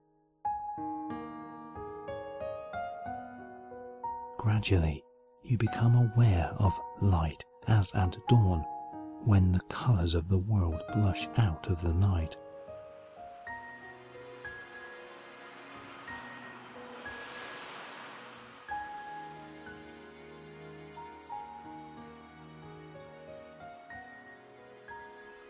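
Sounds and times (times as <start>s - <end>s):
sustained gentle musical tones: 1.8s - 25.4s
speech: 4.4s - 12.4s
gentle ocean waves washing on shore: 13.8s - 21.4s.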